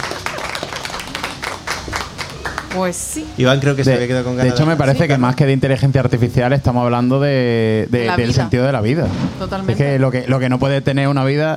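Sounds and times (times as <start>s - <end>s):
spontaneous applause: 0.0s - 3.0s
speech: 2.8s - 11.5s.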